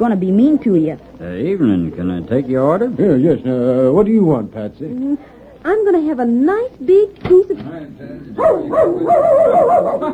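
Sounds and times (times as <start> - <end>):
speech: 0.0 - 10.1
dog yelping and barking while chasing a cat: 8.4 - 10.1.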